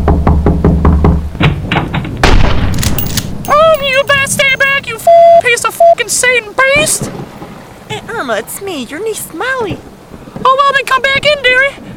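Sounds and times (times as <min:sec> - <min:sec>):
firm hollow knocks on the wooden door of a house: 0:00.0 - 0:02.0
rumbling rushing noise of a worsening storm outside: 0:01.2 - 0:11.9
speech: 0:08.3 - 0:11.9.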